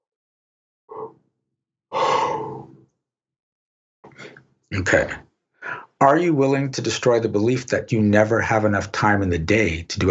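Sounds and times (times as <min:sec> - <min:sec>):
long breathy yawn: 0:01.9 - 0:02.7
speech: 0:04.7 - 0:05.3, 0:06.0 - 0:10.0.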